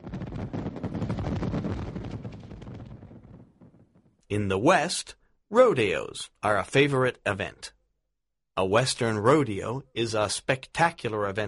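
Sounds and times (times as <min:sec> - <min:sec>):
dense barrage of fireworks exploding: 0:00.0 - 0:04.1
speech: 0:04.3 - 0:07.8, 0:08.6 - 0:11.4.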